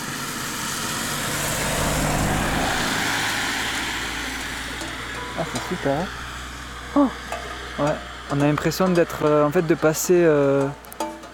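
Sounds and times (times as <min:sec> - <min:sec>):
car driving past outdoors on a mountain road: 0:00.0 - 0:08.3
speech: 0:05.4 - 0:06.2, 0:07.0 - 0:07.2, 0:07.8 - 0:10.8.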